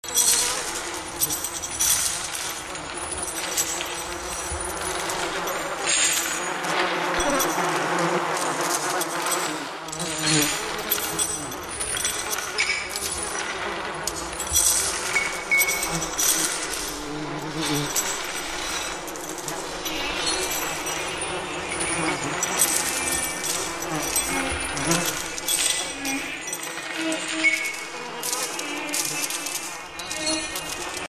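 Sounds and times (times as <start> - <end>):
chains clinking in a dungeon: 0.0 - 31.0
flies buzzing in a dungeon: 0.1 - 31.0.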